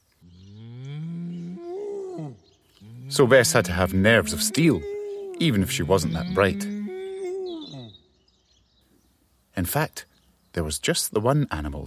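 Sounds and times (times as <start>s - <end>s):
cow mooing: 0.5s - 7.9s
speech: 3.1s - 6.7s, 9.6s - 11.8s.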